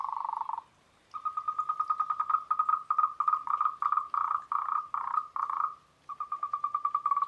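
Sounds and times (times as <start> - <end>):
Moltrecht's green treefrogs calling together in a chorus: 0.0 - 7.2.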